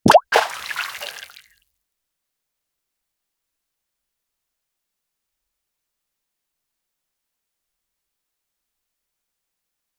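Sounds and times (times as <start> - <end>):
single clear aquatic sound: 0.0 - 1.5.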